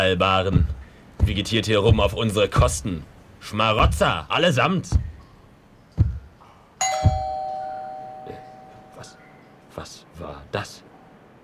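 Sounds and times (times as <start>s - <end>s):
speech: 0.0s - 5.1s, 9.8s - 10.9s
dull low thumps: 0.5s - 2.8s, 6.0s - 6.4s, 7.0s - 7.5s
doorbell chiming: 6.8s - 9.4s.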